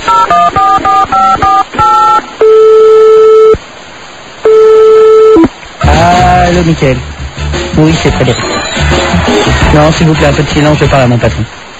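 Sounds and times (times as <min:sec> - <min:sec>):
telephone ringing tone: 0:00.0 - 0:03.6, 0:04.4 - 0:05.5
telephone dialing beeps: 0:00.1 - 0:03.6
speech: 0:06.7 - 0:07.1, 0:07.8 - 0:11.6.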